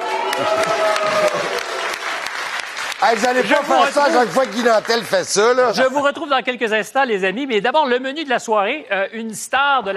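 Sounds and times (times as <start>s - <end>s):
voice rising over applause: 0.0s - 5.2s
studio audience applauding: 0.0s - 5.8s
speech: 0.4s - 1.0s, 3.0s - 9.9s.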